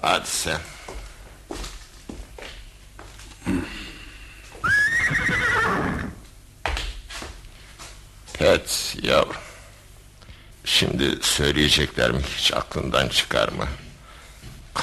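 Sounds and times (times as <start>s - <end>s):
speech: 0.0s - 0.7s, 8.4s - 9.5s, 10.7s - 13.8s
horse whinnying: 4.6s - 6.2s.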